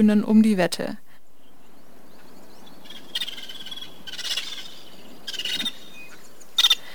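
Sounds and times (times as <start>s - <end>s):
speech: 0.0s - 1.0s
steady outdoor hiss: 0.0s - 6.9s
flock of vulturine guineafowl calling: 1.4s - 6.9s.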